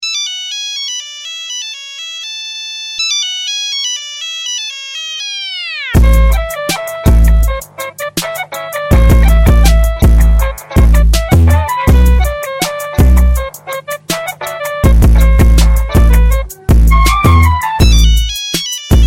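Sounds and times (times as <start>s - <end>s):
hip hop type beat: 4.4s - 19.0s.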